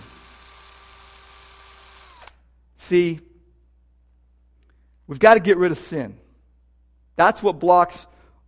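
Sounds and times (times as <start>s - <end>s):
cordless power drill whirring: 0.0s - 2.5s
speech: 2.9s - 3.3s, 5.1s - 6.2s, 7.2s - 8.1s.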